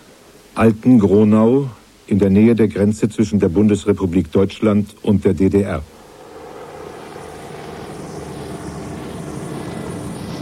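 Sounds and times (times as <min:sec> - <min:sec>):
speech: 0:00.6 - 0:05.9
swarm of Russian military helicopters approaching near the inner-German border: 0:05.9 - 0:10.3.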